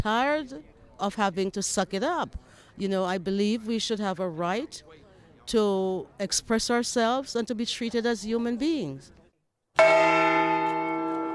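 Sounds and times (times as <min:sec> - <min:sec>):
speech: 0:00.0 - 0:09.2, 0:09.8 - 0:10.6
large bell ringing: 0:09.8 - 0:11.3.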